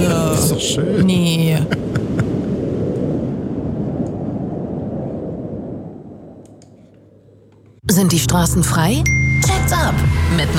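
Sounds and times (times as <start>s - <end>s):
cold strong wind roaring: 0.0s - 7.9s
speech: 0.7s - 1.9s, 8.1s - 10.5s
faint clicks: 6.4s - 7.8s.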